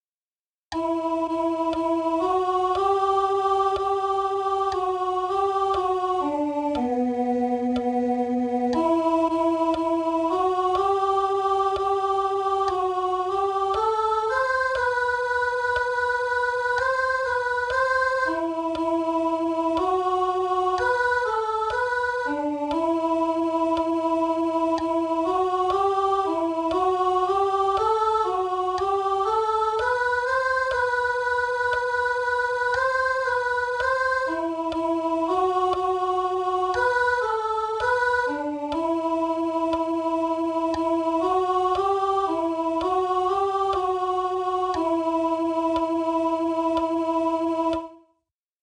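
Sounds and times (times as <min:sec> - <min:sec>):
soprano singing: 0:00.7 - 0:48.0.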